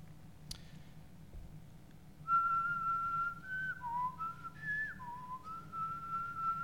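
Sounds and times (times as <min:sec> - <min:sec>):
low hum: 0:00.0 - 0:06.6
person whistling a short soft melody as a wake-up call: 0:02.3 - 0:06.6.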